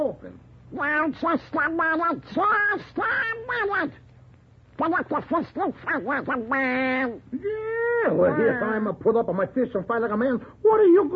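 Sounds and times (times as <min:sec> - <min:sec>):
speech: 0:00.2 - 0:04.0, 0:04.8 - 0:11.1
cartoon-style duck voice quacking: 0:00.7 - 0:04.0, 0:04.8 - 0:07.2.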